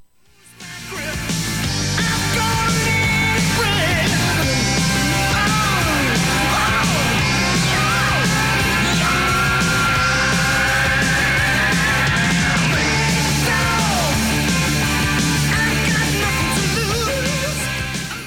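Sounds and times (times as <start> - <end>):
rock singer screaming: 0.6 - 18.2.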